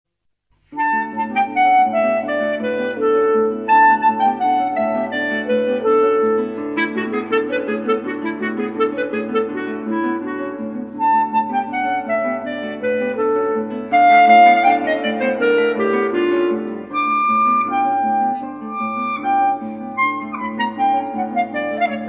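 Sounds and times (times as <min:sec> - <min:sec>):
guitar: 0:00.6 - 0:22.0
clarinet: 0:00.7 - 0:22.0.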